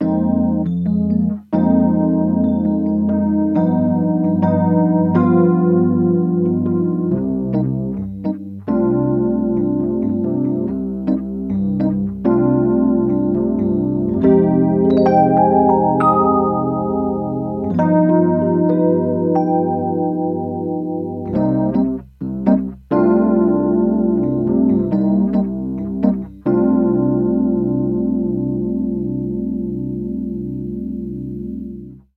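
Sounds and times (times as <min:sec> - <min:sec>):
Harley Benton electric piano with chorus: 0:00.0 - 0:32.1.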